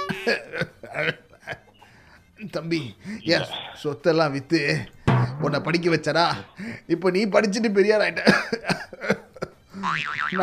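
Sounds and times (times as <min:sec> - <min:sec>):
man coughing as an elderly character in a comic skit: 0:00.1 - 0:01.2, 0:08.2 - 0:09.1
speech: 0:00.2 - 0:01.7, 0:02.4 - 0:09.2, 0:09.8 - 0:10.4.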